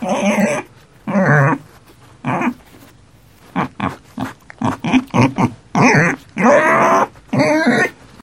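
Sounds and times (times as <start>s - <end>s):
piglet squealing: 0.0s - 1.6s, 3.6s - 8.0s.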